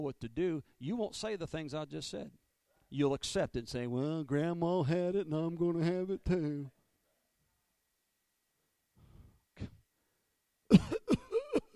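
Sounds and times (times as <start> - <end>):
speech: 0.0 - 6.8
harsh raspy person coughing: 10.7 - 11.7.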